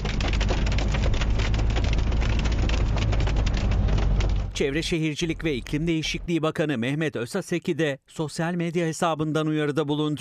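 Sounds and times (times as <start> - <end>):
heavy rain downpour: 0.0 - 6.2
speech: 4.6 - 10.1.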